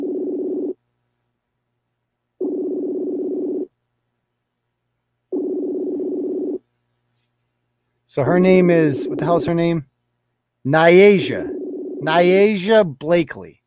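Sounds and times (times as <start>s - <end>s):
buzzy ringback tones on an outgoing phone call: 2.4s - 3.7s, 5.3s - 6.6s, 11.2s - 12.2s
speech: 8.2s - 9.9s, 10.6s - 13.6s.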